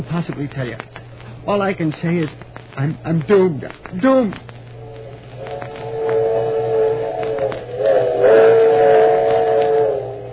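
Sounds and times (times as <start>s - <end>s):
speech: 0.0s - 4.5s
steam train whistle: 4.8s - 10.3s.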